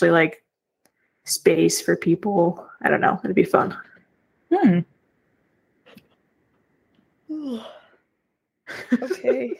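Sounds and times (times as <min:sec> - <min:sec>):
speech: 0:00.0 - 0:00.4, 0:01.3 - 0:03.9, 0:04.5 - 0:04.9, 0:07.3 - 0:07.8, 0:08.7 - 0:09.5
single drawn-out breathy yawn: 0:07.3 - 0:08.0
laughter: 0:08.7 - 0:09.5.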